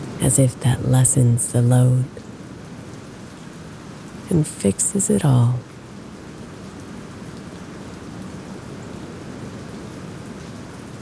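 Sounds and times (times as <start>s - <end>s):
heavy rain pouring down: 0.0s - 11.0s
speech: 0.2s - 2.2s, 4.3s - 5.7s.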